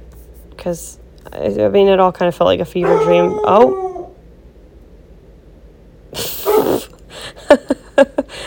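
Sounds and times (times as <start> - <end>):
speech: 0.6 - 3.8
dog barking at something outside: 2.8 - 3.3.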